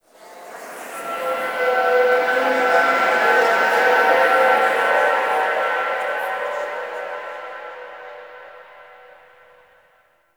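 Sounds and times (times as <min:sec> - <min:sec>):
echoing amphitheatre ambience: 0:00.2 - 0:09.7.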